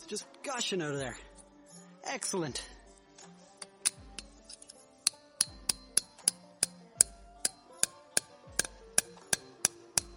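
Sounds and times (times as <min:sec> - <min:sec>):
speech: 0:00.1 - 0:01.3, 0:02.0 - 0:02.8
hammer tapping a metal spile into a tree: 0:03.6 - 0:10.1.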